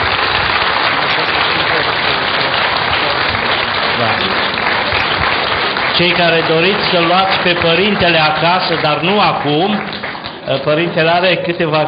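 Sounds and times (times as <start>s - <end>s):
audience applause for a priest in Baia Mare: 0.0s - 11.8s
speech: 6.0s - 11.8s.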